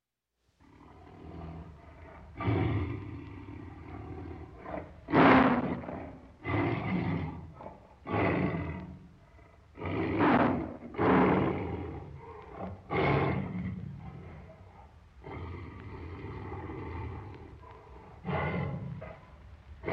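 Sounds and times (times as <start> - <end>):
tiger roaring: 0.6 - 19.9.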